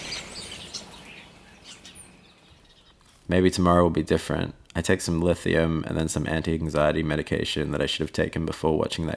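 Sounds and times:
birds chirping at dawn: 0:00.0 - 0:03.4
speech: 0:03.3 - 0:09.1.

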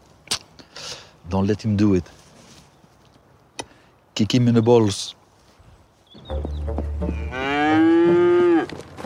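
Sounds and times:
speech: 0:01.3 - 0:02.2, 0:04.2 - 0:05.2
cow mooing: 0:07.1 - 0:08.8.

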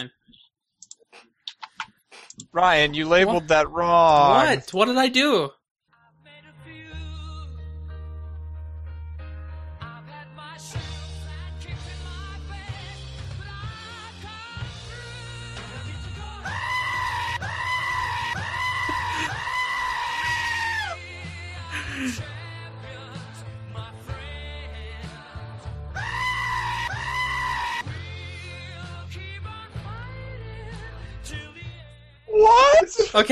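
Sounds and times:
speech: 0:00.0 - 0:00.2, 0:02.5 - 0:05.6
goat screaming with wavering bleats: 0:16.5 - 0:21.0, 0:26.0 - 0:27.9.

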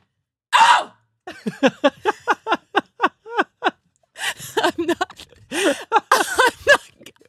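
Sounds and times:
voice imitating a woman's loud screaming sneeze: 0:00.6 - 0:00.9
laughter: 0:01.3 - 0:07.1
speech: 0:01.4 - 0:02.1.

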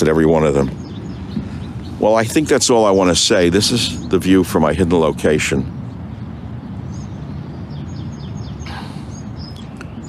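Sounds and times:
speech: 0:00.0 - 0:00.9, 0:02.0 - 0:05.8
birds chirping outdoors: 0:00.0 - 0:10.0.

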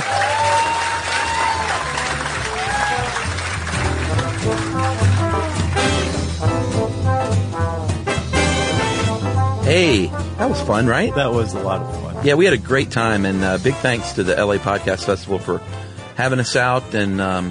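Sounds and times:
live audience applause at the end of a live show in Los Angeles: 0:00.0 - 0:06.3
upbeat music with a thumping bass line: 0:00.7 - 0:17.5
speech: 0:09.8 - 0:17.5.

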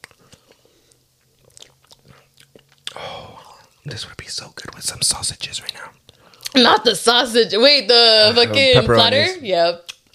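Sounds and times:
person biting into food and chewing to taste it: 0:00.0 - 0:03.8, 0:05.6 - 0:06.6, 0:09.9 - 0:10.1
speech: 0:03.9 - 0:09.9.

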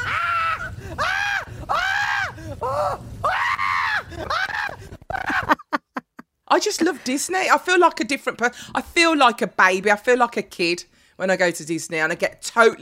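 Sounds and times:
rumbling rushing background: 0:00.0 - 0:05.5
riders screaming on a roller coaster ride: 0:00.0 - 0:05.6
speech: 0:06.6 - 0:12.8.

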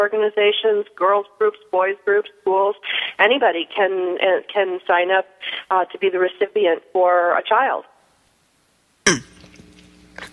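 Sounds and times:
speech: 0:00.0 - 0:07.9, 0:09.0 - 0:09.3
person coughing from a tickle in the throat: 0:09.1 - 0:09.4
throaty rasping: 0:09.1 - 0:10.3.

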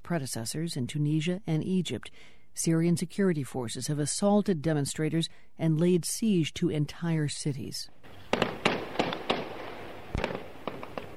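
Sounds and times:
speech: 0:00.1 - 0:08.6
gunfire in a besieged city: 0:08.1 - 0:11.1.

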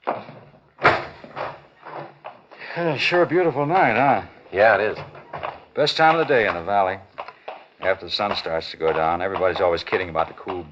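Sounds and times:
door opening and shutting: 0:00.0 - 0:02.3, 0:04.8 - 0:05.7
speech: 0:02.8 - 0:05.1, 0:05.8 - 0:07.1, 0:07.8 - 0:10.7.

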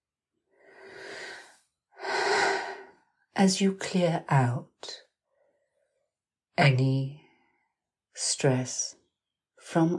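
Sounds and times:
person breathing out slowly during a relaxation exercise: 0:00.6 - 0:03.0
speech: 0:03.4 - 0:05.0, 0:06.6 - 0:07.2, 0:08.2 - 0:09.0, 0:09.7 - 0:09.9.

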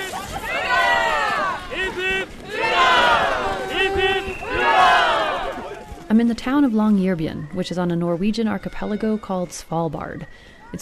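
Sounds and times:
crowd of a couple thousand people cheering on Norwegian National Day in Svalbard: 0:00.0 - 0:06.4
speech: 0:06.2 - 0:10.7.

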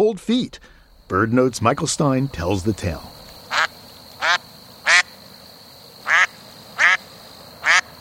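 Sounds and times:
speech: 0:00.0 - 0:03.2
duck quacking: 0:03.5 - 0:05.1, 0:06.0 - 0:07.9.

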